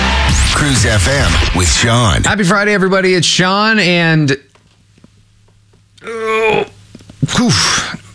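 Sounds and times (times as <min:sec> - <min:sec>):
speech: 0:00.6 - 0:04.5, 0:06.0 - 0:08.0
stifled sneeze held in the bridge of the nose: 0:06.1 - 0:08.1.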